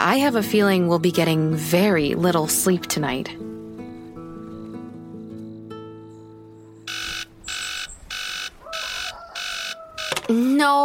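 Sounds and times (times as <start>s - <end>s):
speech: 0.1s - 3.5s, 10.6s - 10.8s
alarm clock blaring in harsh electronic bursts: 6.9s - 10.2s.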